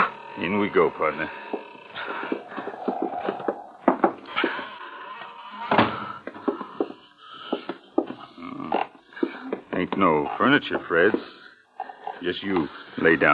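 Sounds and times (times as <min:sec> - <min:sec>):
old cobwebbed door creaking open with squeaks and clicks: 0:00.0 - 0:07.6
speech: 0:00.4 - 0:01.6, 0:10.0 - 0:11.4, 0:12.2 - 0:13.3.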